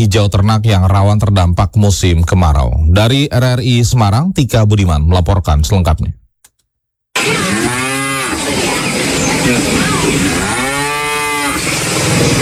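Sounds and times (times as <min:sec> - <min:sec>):
speech: 0:00.0 - 0:06.2
dairy cows mooing on a farm in Central Java Indonesia: 0:07.2 - 0:12.4
outdoor barn noise: 0:07.2 - 0:12.4.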